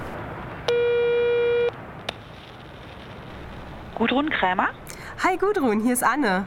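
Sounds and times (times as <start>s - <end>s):
short beeps: 0.7s - 1.7s
telephone ringing tone heard through a mobile phone handset: 0.7s - 1.7s
speech: 4.0s - 6.4s.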